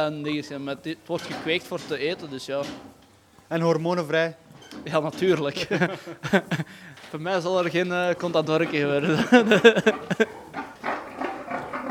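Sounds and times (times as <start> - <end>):
speech: 0.0 - 10.4
laughter: 5.4 - 6.9, 9.0 - 10.7
pigs grunting in a pigsty: 8.6 - 11.8.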